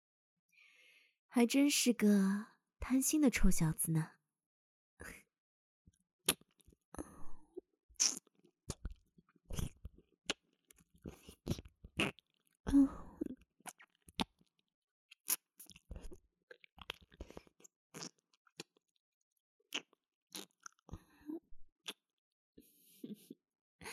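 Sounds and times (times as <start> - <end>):
speech: 1.3 - 4.2, 5.0 - 5.2
wet mouth sounds of nibbling and tasting at an ear: 8.0 - 10.4, 11.0 - 12.2, 15.3 - 18.7, 19.7 - 20.8.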